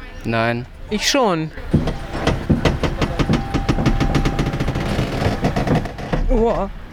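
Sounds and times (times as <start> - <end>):
speech: 0.2 - 1.8, 6.4 - 6.8
car rollover simulator motorized rumble: 1.6 - 6.9
car rollover simulator rapid rattling clacks: 1.7 - 6.6.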